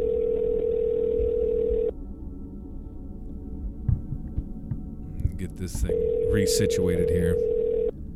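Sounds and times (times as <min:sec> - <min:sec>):
low phone line hiss: 0:00.0 - 0:01.9, 0:05.7 - 0:07.9
telephone ringing tone while placing a call: 0:00.0 - 0:01.9, 0:05.9 - 0:07.9
speech: 0:05.5 - 0:07.6.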